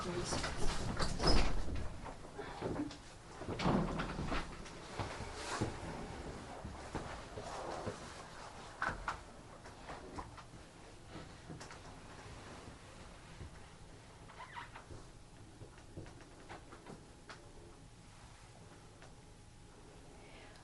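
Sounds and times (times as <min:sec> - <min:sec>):
speech: 0:00.0 - 0:00.9
low rumbling room noise: 0:00.0 - 0:20.6
door opening with thumps and sliding rattles: 0:00.3 - 0:04.6.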